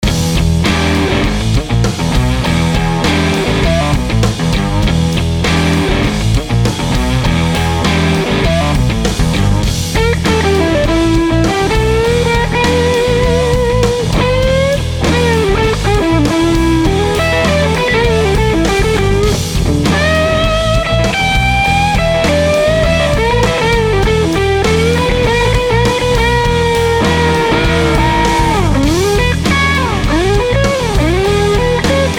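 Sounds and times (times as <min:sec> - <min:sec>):
Stratocaster electric guitar with tube drive: 0:00.0 - 0:32.1.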